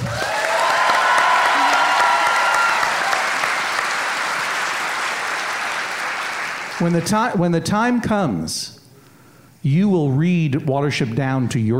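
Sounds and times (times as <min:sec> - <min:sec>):
audience applause: 0:00.0 - 0:07.2
speech: 0:06.8 - 0:08.8, 0:09.6 - 0:11.7.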